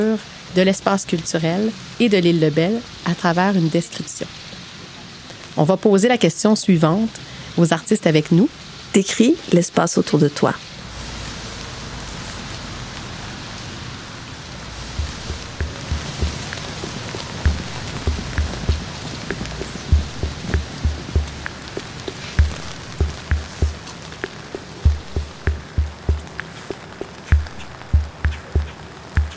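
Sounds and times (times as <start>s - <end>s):
speech: 0.0s - 4.4s, 5.6s - 10.7s
rain pattering on hard surfaces: 0.0s - 29.3s
dull low thumps: 14.8s - 29.3s.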